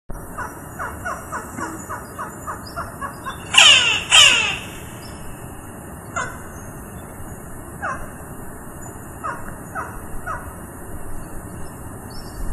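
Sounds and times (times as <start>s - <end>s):
Campephilus magellanicus in PN Nahuel Huapi Challhuaco: 0.4s - 5.0s.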